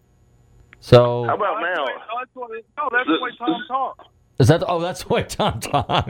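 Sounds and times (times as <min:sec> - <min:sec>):
speech: 0:00.8 - 0:06.0
voice through a thin narrowband phone line: 0:01.2 - 0:04.1.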